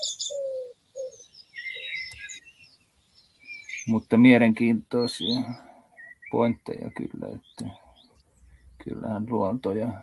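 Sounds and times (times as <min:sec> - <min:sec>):
cuckoo calling: 0:00.0 - 0:02.8, 0:04.9 - 0:08.8
birds chirping: 0:00.0 - 0:10.0
speech: 0:03.9 - 0:05.7, 0:06.3 - 0:07.8, 0:08.8 - 0:10.0.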